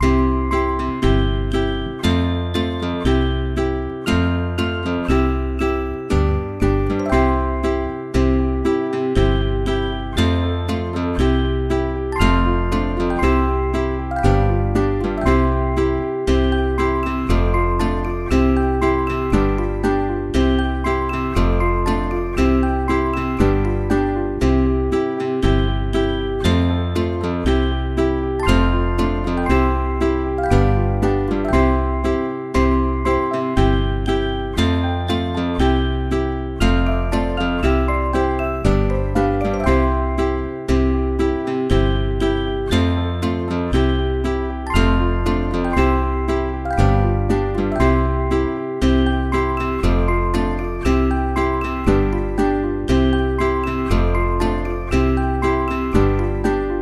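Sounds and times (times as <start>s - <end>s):
instrumental nursery rhyme: 0.0s - 56.7s.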